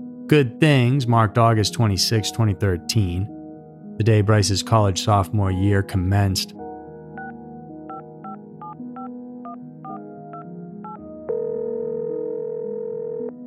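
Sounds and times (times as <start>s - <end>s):
soft musical background: 0.0s - 13.4s
speech: 0.3s - 3.4s, 4.0s - 6.6s
touch-tone telephone dialing beeps: 7.9s - 11.0s
telephone dial tone: 7.9s - 13.4s.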